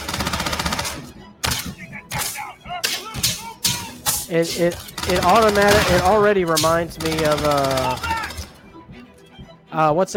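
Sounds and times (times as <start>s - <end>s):
gunfire in a shooter video game set in a building: 0.0s - 1.7s, 4.9s - 8.5s
speech: 4.3s - 8.2s, 9.8s - 10.1s.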